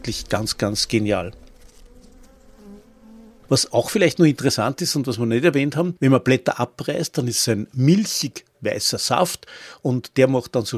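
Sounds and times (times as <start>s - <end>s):
speech: 0.0s - 1.4s, 3.5s - 10.7s
bees and bumblebees buzzing over an agricultural field of dandelions: 0.0s - 3.9s.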